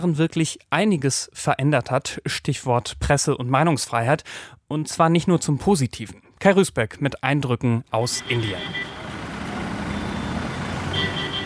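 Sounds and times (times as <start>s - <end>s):
speech: 0.0s - 9.0s
broadband road noise: 8.0s - 11.4s
bus crawling through a traffic jam in Pune, India: 8.0s - 11.4s
faint tonal beep or horn: 8.0s - 11.4s.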